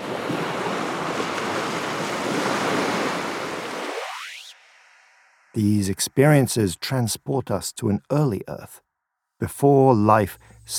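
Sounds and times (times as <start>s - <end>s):
heavy surf crashing against a seashore: 0.0s - 4.2s
speech: 5.6s - 8.8s, 9.4s - 10.7s.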